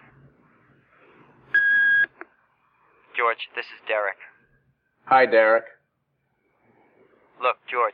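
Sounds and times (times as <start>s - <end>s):
steady electronic answering machine beep: 1.5s - 2.2s
speech: 3.3s - 4.3s, 5.0s - 5.8s, 7.4s - 7.9s.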